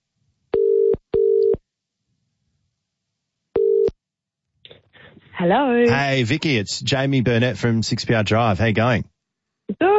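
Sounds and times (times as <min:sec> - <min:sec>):
telephone ringing tone heard down the line: 0:00.6 - 0:01.6, 0:03.6 - 0:03.9
speech: 0:05.4 - 0:09.1, 0:09.7 - 0:09.9.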